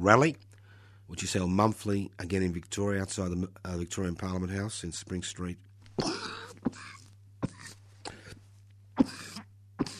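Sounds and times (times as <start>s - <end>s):
speech: 0.0s - 0.4s, 1.1s - 6.9s
steady low electrical hum: 0.0s - 9.9s
person coughing: 6.0s - 8.4s, 9.0s - 9.9s.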